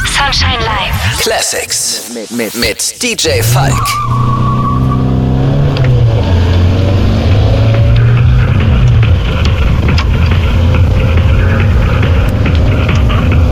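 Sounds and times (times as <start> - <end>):
speech: 0.2 - 4.4
road noise: 3.0 - 13.5
car engine droning while driving: 3.4 - 13.5.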